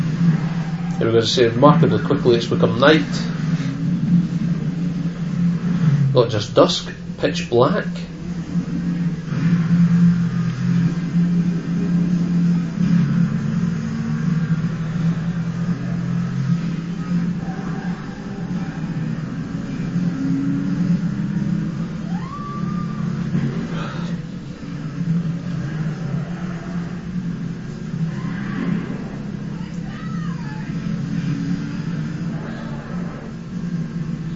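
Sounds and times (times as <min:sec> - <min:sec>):
brief higher whines: 0:00.0 - 0:34.3
car engine revving and shifting while weaving through highway traffic at night: 0:00.0 - 0:34.3
speech: 0:01.0 - 0:03.6, 0:06.1 - 0:08.1.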